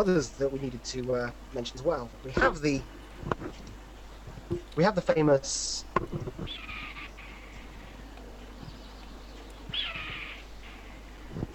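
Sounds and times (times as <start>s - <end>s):
speech: 0.0s - 3.7s, 4.8s - 6.7s
red-tailed hawk screaming: 9.7s - 10.4s.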